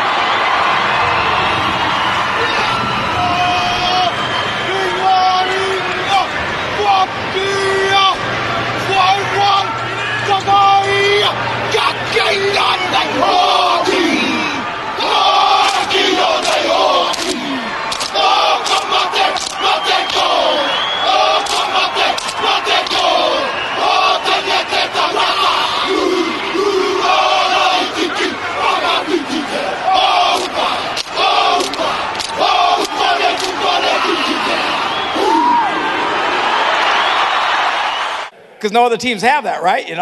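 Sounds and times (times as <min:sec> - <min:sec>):
crowd roaring in a large stadium: 0:00.0 - 0:38.4
rugby team men performing native war chant in unison: 0:02.3 - 0:36.3
speech: 0:38.6 - 0:40.0.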